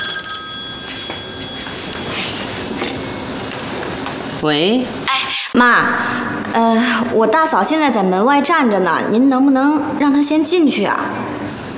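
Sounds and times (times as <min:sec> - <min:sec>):
telephone ringing with a high-pitched trill: 0:00.0 - 0:03.2
speech: 0:04.4 - 0:11.4.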